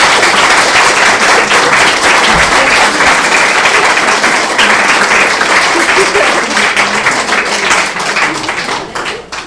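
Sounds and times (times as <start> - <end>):
loud applause from a large audience: 0.0 - 9.4
laughter: 1.2 - 8.7.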